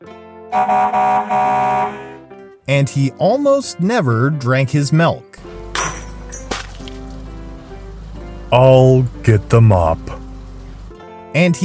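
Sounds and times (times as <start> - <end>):
speech: 0.5 - 2.0, 2.7 - 5.3, 8.5 - 10.2, 11.4 - 11.6
60-ton diesel haul truck air horn honking: 0.5 - 2.3.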